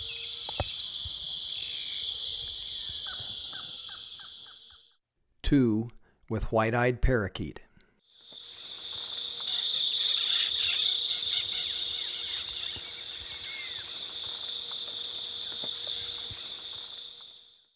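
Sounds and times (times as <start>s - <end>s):
pale-rumped swift twittering in Ecuador: 0.0s - 4.8s, 8.4s - 17.3s
high-pitched insect drone in Ecuador: 0.0s - 4.9s, 8.2s - 17.7s
speech: 5.5s - 7.6s.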